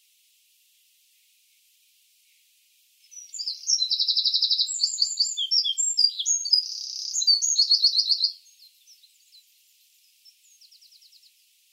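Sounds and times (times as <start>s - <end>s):
Eurasian wren Troglodytes troglodytes singing: 3.0s - 11.4s.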